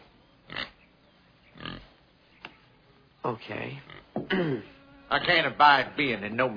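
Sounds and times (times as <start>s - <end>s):
steady hiss: 0.0s - 6.5s
pig grunting with low snorting oinks: 1.5s - 2.0s, 3.8s - 5.6s
speech: 3.2s - 6.5s.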